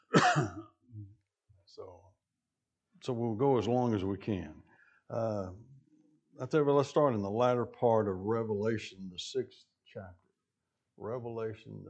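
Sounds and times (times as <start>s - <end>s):
person coughing: 0.0s - 0.8s
speech: 1.8s - 2.2s, 3.0s - 5.7s, 6.4s - 10.2s, 11.0s - 11.8s.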